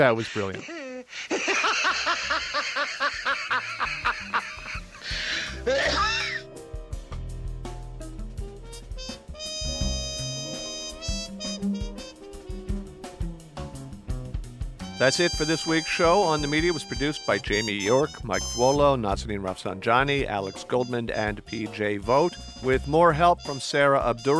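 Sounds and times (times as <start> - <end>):
speech: 0.0 - 1.4, 2.2 - 4.0, 15.0 - 24.3
man laughing uncontrollably in a television political ad: 0.0 - 6.4
music: 1.9 - 24.3
man choking and coughing: 4.7 - 6.4.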